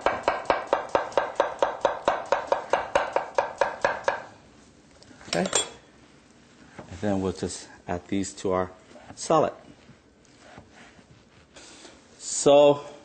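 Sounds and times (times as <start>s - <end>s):
knife slicing vegetables into half moons on a board: 0.0s - 4.3s
speech: 5.3s - 5.6s, 7.0s - 9.6s, 12.4s - 12.9s.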